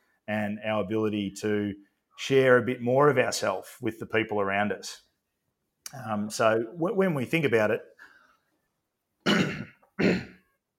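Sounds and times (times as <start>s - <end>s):
speech: 0.3s - 5.1s, 5.9s - 8.0s
person clearing throat in harsh raspy bursts: 9.2s - 10.5s.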